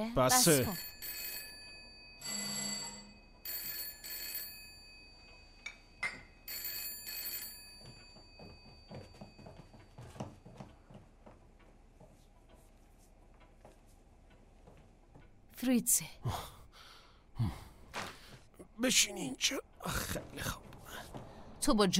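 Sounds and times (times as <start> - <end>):
speech: 0.0 - 0.9, 15.6 - 16.6, 17.4 - 17.6, 18.8 - 21.9
old-fashioned telephone bell ringing: 0.4 - 10.7.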